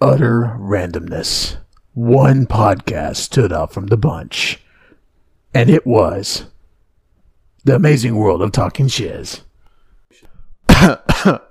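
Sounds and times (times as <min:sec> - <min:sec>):
speech: 0:00.2 - 0:04.6, 0:05.5 - 0:06.5, 0:07.6 - 0:09.5, 0:10.1 - 0:11.4
man clearing his throat: 0:10.7 - 0:11.4.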